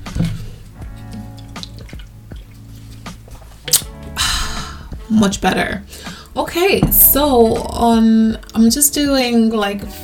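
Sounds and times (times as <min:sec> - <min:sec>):
person sipping water with soft wet gulping clicks: 0:01.0 - 0:04.9
speech: 0:05.1 - 0:10.0
short breathy exhale: 0:05.9 - 0:06.3.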